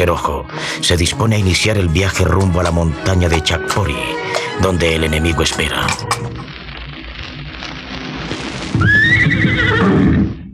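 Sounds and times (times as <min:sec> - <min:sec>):
speech: 0:00.0 - 0:06.3
horse neighing loudly: 0:08.9 - 0:10.3.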